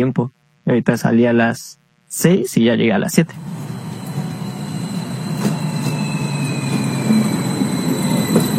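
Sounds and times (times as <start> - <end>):
speech: 0.0 - 3.8
faint high train wheel squeals: 3.4 - 8.5
passenger train rumbling on rails in central Mexico: 3.4 - 8.5.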